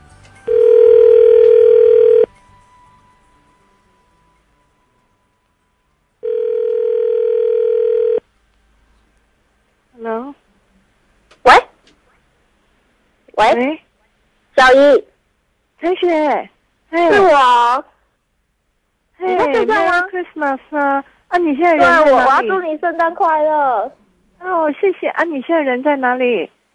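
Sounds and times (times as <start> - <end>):
telephone line tone while calling someone: 0.4 - 2.3, 6.2 - 8.2
speech: 14.7 - 15.1, 15.8 - 17.9, 19.2 - 26.6.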